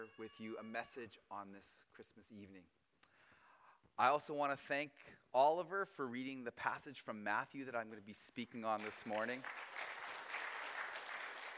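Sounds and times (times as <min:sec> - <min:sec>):
speech: 0:00.0 - 0:02.8, 0:04.0 - 0:10.0
crowd applauding: 0:08.7 - 0:11.5.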